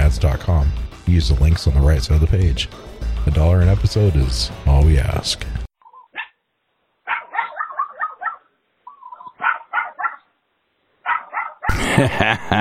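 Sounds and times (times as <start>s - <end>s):
speech: 0.1s - 5.6s, 12.0s - 12.5s
dog barking and yipping on a voicemail: 5.8s - 6.4s, 7.0s - 10.3s, 11.0s - 11.7s
laughter: 11.7s - 12.5s.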